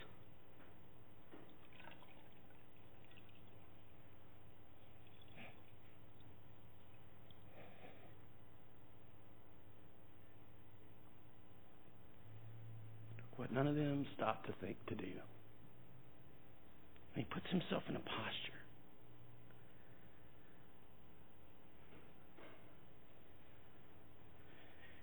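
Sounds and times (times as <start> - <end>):
water poured into a basin: 1.4 - 6.3
speech: 13.5 - 15.4, 17.1 - 18.5.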